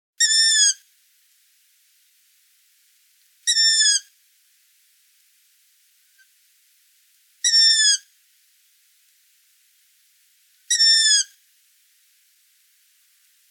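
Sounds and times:
long-eared owl calling: 0.2 - 0.8, 3.5 - 4.1, 7.4 - 8.1, 10.7 - 11.4.

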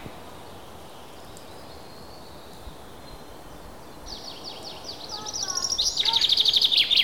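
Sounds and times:
chaffinch voice: 5.1 - 6.9.

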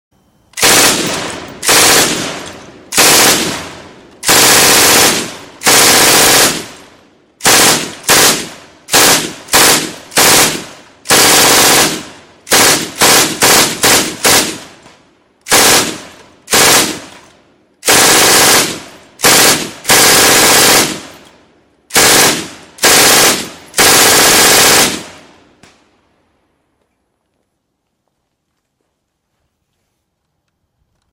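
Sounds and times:
machine gun firing: 0.6 - 21.3, 21.9 - 25.4.

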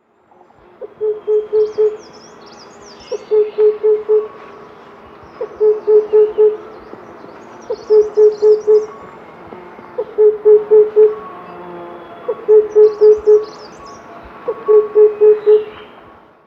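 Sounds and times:
oriental cuckoo calling: 0.7 - 2.3, 2.9 - 16.3.

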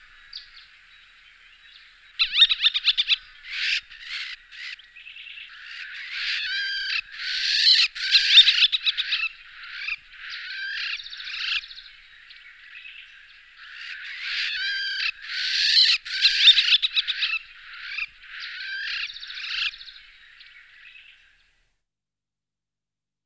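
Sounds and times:
Levant sparrowhawk calling: 2.2 - 4.8, 5.5 - 11.7, 13.6 - 19.8.

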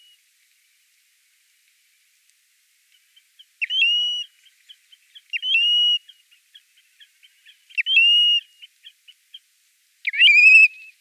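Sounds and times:
American golden plover calling: 3.0 - 9.5, 10.0 - 11.0.

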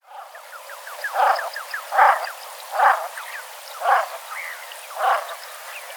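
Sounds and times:
common shelduck calling: 1.1 - 3.1, 3.8 - 4.2, 5.0 - 5.3.

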